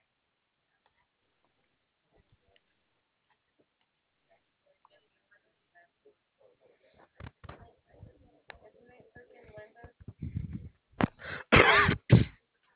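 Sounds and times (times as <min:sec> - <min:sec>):
quiet talking: 0:04.3 - 0:10.7
loud sudden sneeze: 0:11.2 - 0:12.4.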